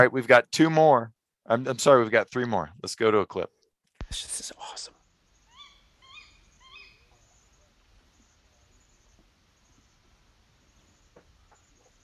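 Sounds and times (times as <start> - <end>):
speech: 0.0 - 5.0
quiet hissing outdoor background: 0.2 - 12.0
night bird with short high harmonic calls: 4.6 - 12.0.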